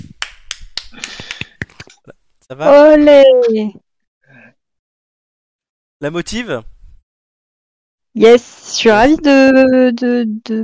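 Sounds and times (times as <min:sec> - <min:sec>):
small group clapping hands: 0:00.0 - 0:02.0
speech: 0:02.5 - 0:03.8, 0:06.0 - 0:06.7, 0:08.2 - 0:10.6.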